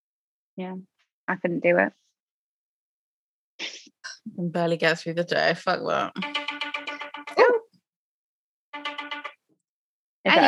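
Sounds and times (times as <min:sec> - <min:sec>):
speech: 0:00.6 - 0:02.0, 0:04.2 - 0:06.3
mobile phone ringtone of rapidly pulsing electronic tones: 0:06.2 - 0:07.5, 0:08.8 - 0:09.3.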